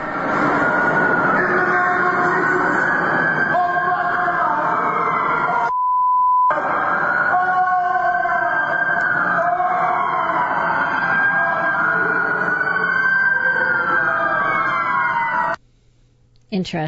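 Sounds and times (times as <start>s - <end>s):
emergency vehicle sirens wailing: 0.0s - 5.7s, 6.5s - 15.6s
rumbling traffic: 0.0s - 5.7s, 6.5s - 15.6s
high censor beep over profanity: 5.7s - 6.5s
speech: 16.6s - 16.8s.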